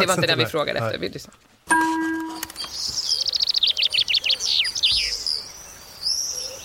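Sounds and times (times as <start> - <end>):
speech: 0.0 - 2.0
brief tonal sound: 1.7 - 2.6
common chaffinch song: 1.7 - 6.6.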